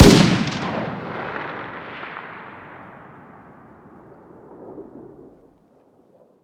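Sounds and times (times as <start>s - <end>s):
distant 308 rifle fire exterior: 0.0s - 5.0s.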